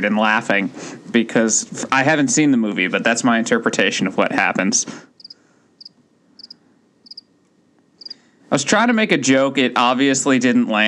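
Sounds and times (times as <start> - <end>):
speech: 0.0 - 5.1, 8.5 - 10.8
lone cricket chirping: 5.2 - 7.3.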